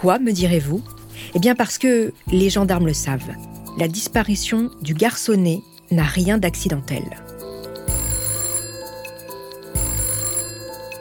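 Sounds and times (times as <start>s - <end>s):
speech: 0.0s - 7.3s
telephone bell ringing with a metallic trill: 7.8s - 10.9s.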